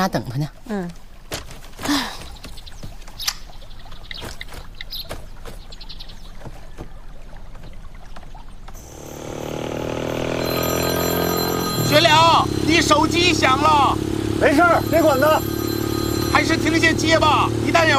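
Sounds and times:
low engine rumble: 8.6 - 17.9
mobile phone ringtone: 8.8 - 13.7, 14.4 - 17.9.

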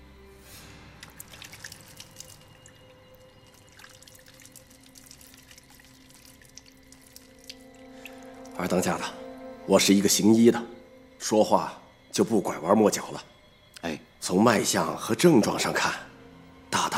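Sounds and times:
hands washed in tea water splashing and trickling: 1.0 - 2.8, 3.5 - 8.6
tea water dripping: 1.0 - 9.4
speech: 8.6 - 16.1.

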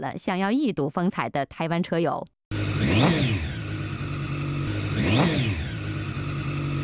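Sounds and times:
speech: 0.0 - 3.3
parked motorcycle engine revving on a street at night: 2.5 - 6.8.

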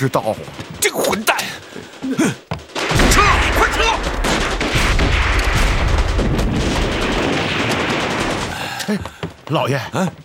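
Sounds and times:
speech: 0.0 - 2.4, 8.9 - 10.2
gunfire barrage: 2.7 - 8.8.

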